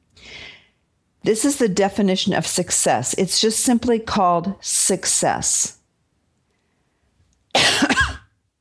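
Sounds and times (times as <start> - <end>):
speech: 1.3 - 5.8
harsh cough: 7.5 - 8.4.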